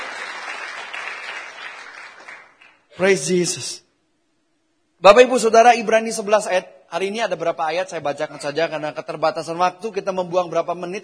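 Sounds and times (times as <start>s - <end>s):
church congregation applauding during a service: 0.0s - 3.2s
speech: 3.0s - 3.8s, 5.0s - 11.0s.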